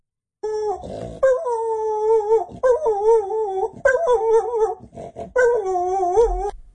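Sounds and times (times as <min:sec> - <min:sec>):
dog howling in high wavering falsetto: 0:00.4 - 0:04.8, 0:05.4 - 0:06.5
dog snorting and grunting: 0:00.8 - 0:01.4, 0:04.8 - 0:05.4.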